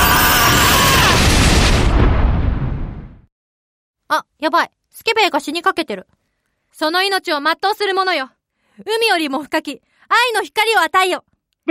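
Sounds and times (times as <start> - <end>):
roaring explosion sound effect for fire and lightning attack spells: 0.0 - 3.3
speech: 4.1 - 6.2, 6.8 - 11.7.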